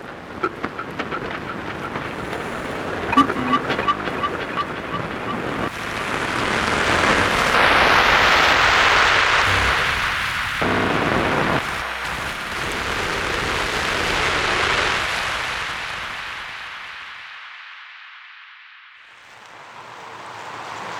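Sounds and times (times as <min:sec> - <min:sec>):
faint rhythmic ticks: 0:00.0 - 0:05.8
Mediterranean Sea surf and wind-blown water: 0:00.0 - 0:17.8, 0:19.0 - 0:20.9.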